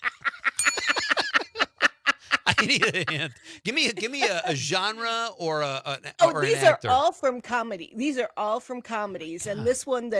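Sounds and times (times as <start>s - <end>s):
laughter: 0.0s - 5.0s
small bell ringing: 0.6s - 1.5s
speech: 2.6s - 10.1s.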